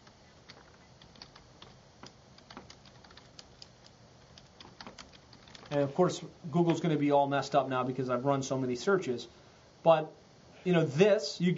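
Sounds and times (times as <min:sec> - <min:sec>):
steady hiss: 0:00.0 - 0:11.5
computer keyboard typing a search query: 0:00.5 - 0:05.8
speech: 0:05.7 - 0:11.5.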